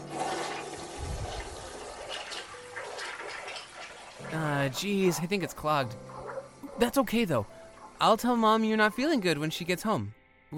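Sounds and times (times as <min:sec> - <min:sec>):
toilet flushing: 0:00.0 - 0:04.8
speech: 0:04.3 - 0:06.1, 0:06.8 - 0:10.5.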